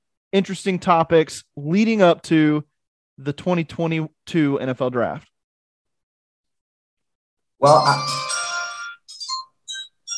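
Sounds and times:
speech: 0:00.3 - 0:05.3, 0:07.6 - 0:08.2
chimes playing from a phone: 0:07.6 - 0:10.1.

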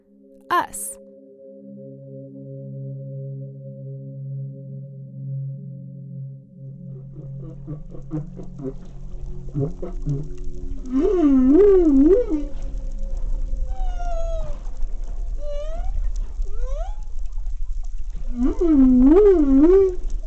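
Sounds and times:
speech: 0:00.4 - 0:01.0, 0:07.9 - 0:12.7
male humpback whale singing during mating season: 0:06.6 - 0:20.2
low underwater rumble: 0:06.8 - 0:20.2.

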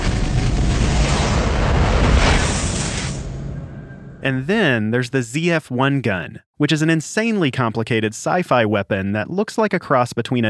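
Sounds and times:
film sound effect of crackling fireball hurtling towards Earth: 0:00.0 - 0:04.2
speech: 0:04.2 - 0:10.4.

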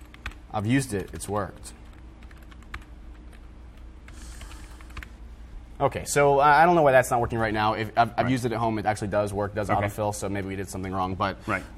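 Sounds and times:
typing on a computer keyboard: 0:00.0 - 0:05.1
low hum: 0:00.0 - 0:11.7
speech: 0:00.5 - 0:01.8, 0:05.8 - 0:11.7.

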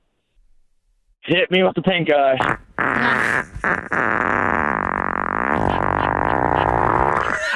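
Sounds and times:
speech: 0:01.3 - 0:04.2
long loud buzzy wet-sounding fart: 0:02.4 - 0:07.5.

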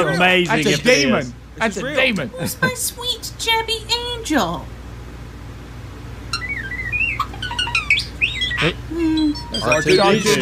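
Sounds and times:
speech: 0:00.0 - 0:04.7, 0:08.6 - 0:10.4
low steady hum: 0:00.0 - 0:10.4
starling mimicking electronic robot beeps: 0:06.2 - 0:10.4.

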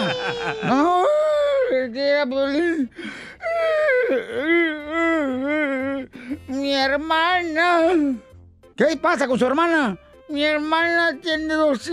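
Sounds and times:
laughter: 0:00.0 - 0:01.1
person wailing and crying: 0:00.0 - 0:06.6
speech: 0:02.2 - 0:11.9.

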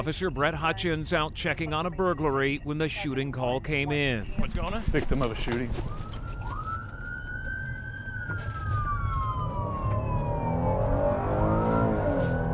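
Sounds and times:
speech: 0:00.0 - 0:06.1
steady rumble of road and engine noise: 0:00.0 - 0:12.5
police car siren wailing while racing to scene: 0:05.2 - 0:12.5.

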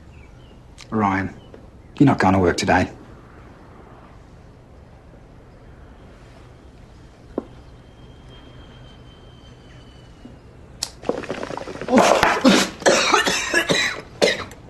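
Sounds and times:
speech: 0:00.9 - 0:01.4, 0:02.0 - 0:03.0
person coughing: 0:12.3 - 0:14.6.

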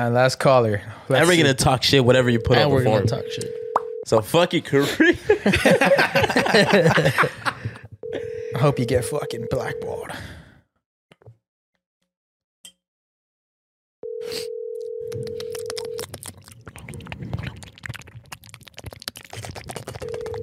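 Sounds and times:
speech: 0:00.0 - 0:07.5, 0:08.6 - 0:10.4
phone outgoing ringback tone: 0:02.1 - 0:04.0, 0:08.0 - 0:10.1, 0:14.0 - 0:16.0, 0:20.0 - 0:20.4
laughter: 0:04.6 - 0:07.8.

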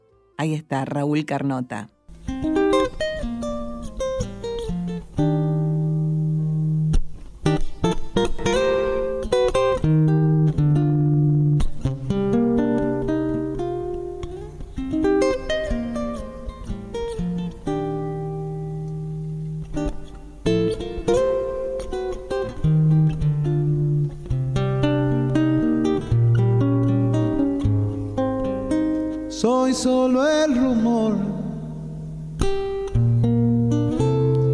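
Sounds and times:
plucked string accompaniment: 0:00.0 - 0:29.8, 0:30.4 - 0:34.5
speech: 0:00.4 - 0:02.0
person singing a folk song: 0:29.3 - 0:32.0.

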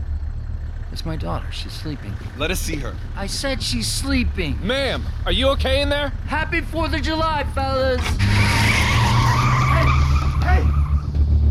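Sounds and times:
low van engine rumble: 0:00.0 - 0:11.4
speech: 0:01.0 - 0:08.6
van tires squealing as it peels out: 0:02.3 - 0:11.4.

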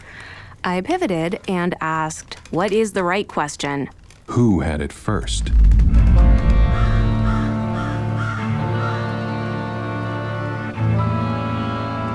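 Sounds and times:
speech: 0:00.6 - 0:05.8
steady droning background: 0:05.2 - 0:12.1
blackbirds cawing harshly: 0:06.6 - 0:09.1.

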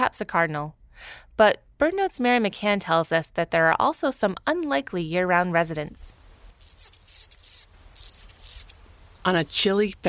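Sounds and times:
speech: 0:00.1 - 0:06.9, 0:09.2 - 0:10.0
male Anna's hummingbird singing: 0:05.5 - 0:10.0.

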